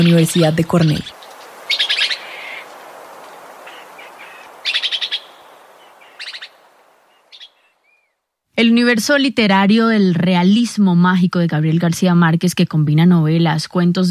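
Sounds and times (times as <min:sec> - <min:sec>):
speech: 0:00.0 - 0:01.2, 0:08.6 - 0:14.0
red-eyed antbird trilling in Huila Colombia: 0:00.0 - 0:08.2.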